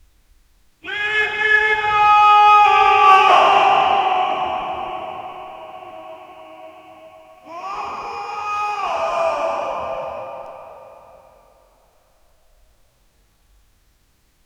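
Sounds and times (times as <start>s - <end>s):
male army chant: 0.8s - 11.6s.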